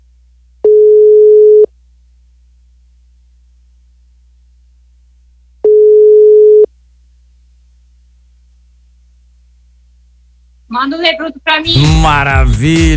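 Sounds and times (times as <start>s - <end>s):
faint low hum: 0.0s - 12.8s
ringback tone of an outgoing telephone call: 0.6s - 1.7s, 5.6s - 6.7s
speech: 10.8s - 12.9s.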